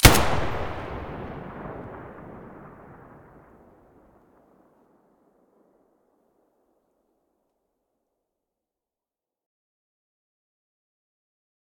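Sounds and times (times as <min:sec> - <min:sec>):
rifle muzzle blast: 0:00.0 - 0:03.6.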